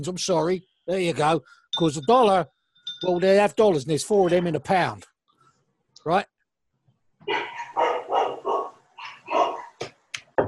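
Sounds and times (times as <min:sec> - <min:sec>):
speech: 0:00.0 - 0:05.1, 0:06.0 - 0:06.3, 0:07.2 - 0:07.9
dog barking: 0:07.3 - 0:09.8.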